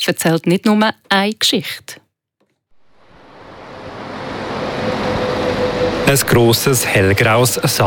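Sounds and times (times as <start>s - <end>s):
speech: 0.0s - 2.0s, 6.1s - 7.8s
steady broadband roar of road traffic beside a stone cross: 2.7s - 7.8s.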